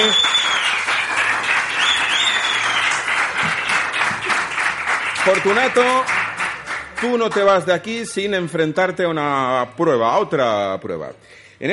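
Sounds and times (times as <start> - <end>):
faint whistles and cheers: 0.0 - 3.8
crowd applauding: 0.0 - 7.9
speech: 5.3 - 6.2, 7.0 - 11.7.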